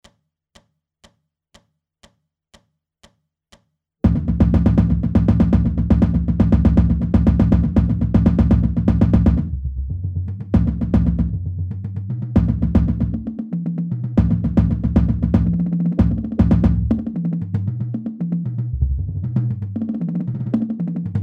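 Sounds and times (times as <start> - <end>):
drumline bass drums playing slowly: 4.0 - 21.2.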